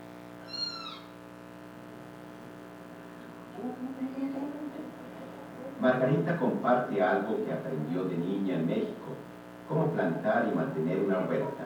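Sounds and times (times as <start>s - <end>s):
steady hum: 0.0s - 11.6s
kitten mewing: 0.4s - 1.2s
speech: 3.6s - 5.0s, 5.8s - 11.6s.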